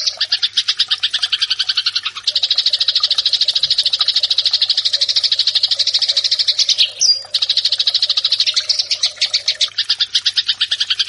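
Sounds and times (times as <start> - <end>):
Eurasian tree sparrow fighting-style buzzy chirping song: 0.0 - 11.0.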